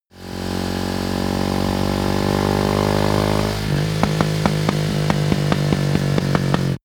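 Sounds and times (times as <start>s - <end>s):
motocross motorcycle decelerating and accelerating slowly: 0.1s - 6.8s.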